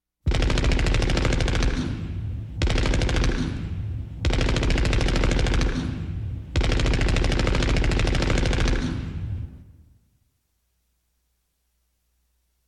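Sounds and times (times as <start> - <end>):
caliber 30 machine gun: 0.3 - 9.3.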